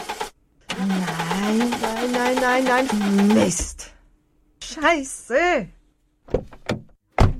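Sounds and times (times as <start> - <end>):
car engine cranking but failing to start: 0.0 - 3.6
speech: 1.6 - 3.9, 4.8 - 5.8.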